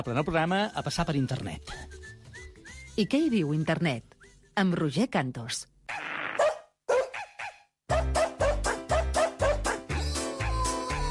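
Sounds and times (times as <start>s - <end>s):
speech: 0.0s - 2.0s, 3.0s - 5.7s
dog barks and yips: 6.4s - 10.6s.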